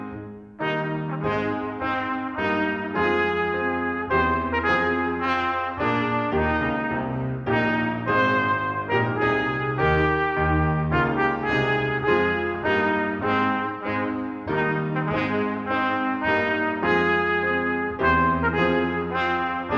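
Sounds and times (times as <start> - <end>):
national anthem performance: 0.4 - 19.7.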